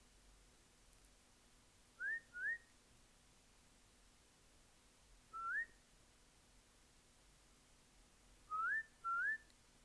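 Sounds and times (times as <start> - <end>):
short rising whistles imitating chaffinch song: 2.0 - 2.7, 5.3 - 5.8, 8.5 - 9.6.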